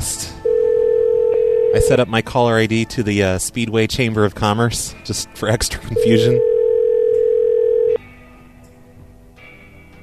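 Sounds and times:
telephone dial tone while calling a convenience store: 0.4 - 1.9, 6.0 - 8.0
speech: 1.7 - 6.5.

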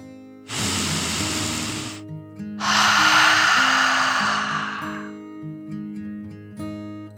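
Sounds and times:
deep breathing in and out as a relaxation exercise for children: 0.5 - 2.0, 2.6 - 5.2.

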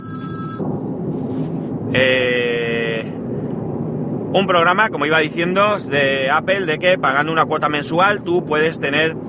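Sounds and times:
telephone ringing with electronic chime: 0.0 - 0.6
low rumble: 0.5 - 9.2
speech: 1.9 - 2.3, 4.4 - 9.2.

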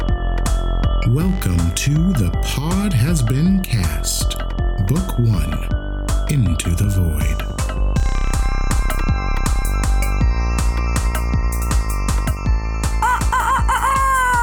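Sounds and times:
loud steady music with a regular thumping beat: 0.0 - 14.4
speech: 1.0 - 7.5
rooster crowing cock-a-doodle-doo: 13.0 - 14.4.

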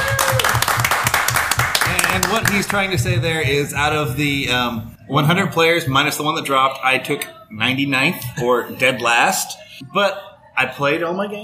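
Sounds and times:
group applauding an award winner: 0.0 - 3.0
steady low thumps: 0.6 - 5.0
speech: 2.2 - 11.4.

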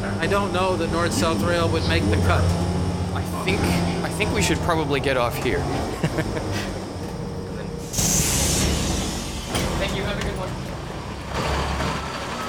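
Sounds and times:
city bus engine idling with low rumble: 0.0 - 12.4
speech: 0.2 - 6.8
laughter: 5.5 - 7.2
city bus air-brake hiss: 7.8 - 10.0.

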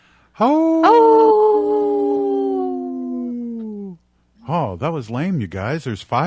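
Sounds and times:
speech: 0.4 - 1.1, 4.5 - 6.2
five people howling in imitation of wolves: 0.4 - 4.0.

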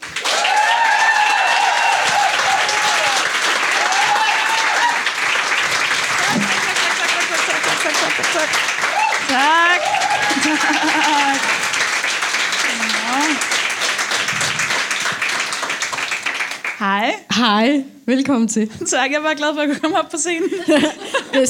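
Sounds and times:
audience applause welcoming a comedian on stage: 0.0 - 16.8
laughter: 6.1 - 8.7, 9.3 - 11.8, 19.7 - 21.4
speech: 17.4 - 21.4.

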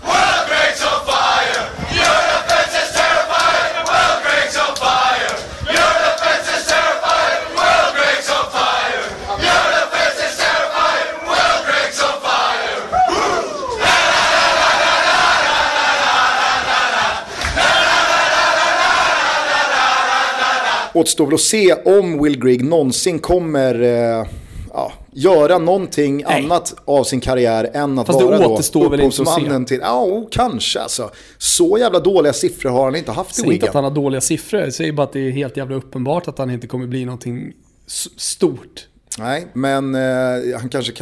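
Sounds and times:
large crowd of football fans chanting in a stadium in France: 0.0 - 21.0
speech: 21.0 - 24.4, 25.2 - 41.0.

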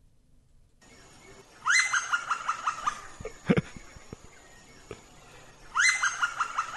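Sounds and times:
Kaempfer's woodpecker laughing series of rapid calls: 1.6 - 6.7.

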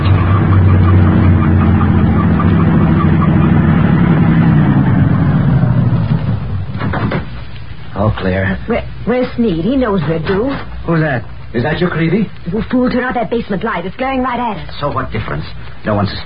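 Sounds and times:
heavy truck engine rumbling: 0.0 - 10.9
speech: 8.3 - 16.2.

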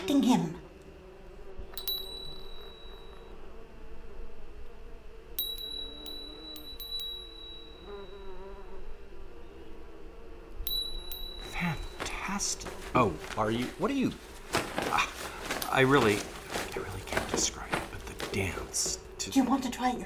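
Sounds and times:
steady buzzing hum: 0.0 - 20.0
speech: 0.1 - 0.6, 12.4 - 14.3, 14.9 - 16.4, 17.3 - 17.7, 18.4 - 20.0
small bell rung by a bell pull in a bell tower: 1.7 - 3.4, 5.4 - 8.6, 10.7 - 12.0.

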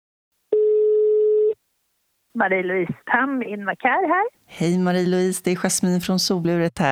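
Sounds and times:
telephone tone of an outgoing call: 0.5 - 1.6
speech: 2.4 - 6.8.

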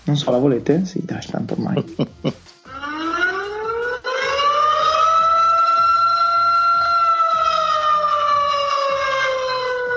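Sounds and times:
speech: 0.0 - 2.4
laughter: 1.6 - 2.5
siren sound effect wailing: 2.7 - 9.9.

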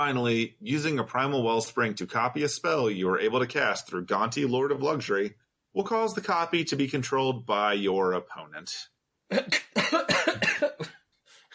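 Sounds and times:
speech: 0.0 - 11.0
person coughing: 9.4 - 10.9.

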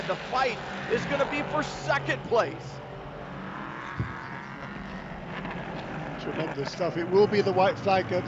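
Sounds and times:
prototype race cars roaring past at speed: 0.0 - 8.2
speech: 0.1 - 2.9, 6.3 - 8.2
low thump: 4.0 - 4.2.

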